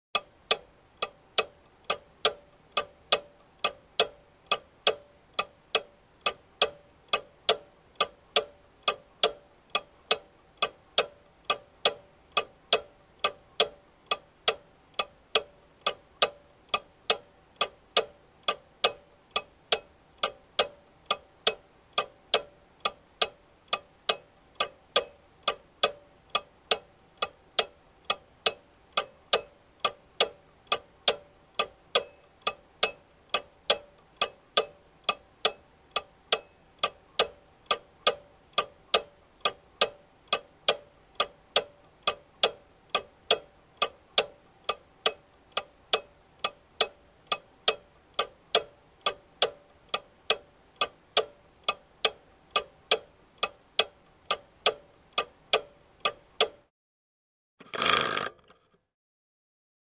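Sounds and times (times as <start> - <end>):
wall clock with weights and pendulum ticking: 0.2 - 56.7, 57.8 - 58.3
wall clock mechanism winding: 57.6 - 58.7.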